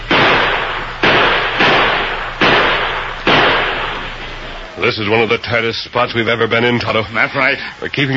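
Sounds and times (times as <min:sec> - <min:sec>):
gunshots: 0:00.0 - 0:04.8
speech: 0:04.8 - 0:08.1.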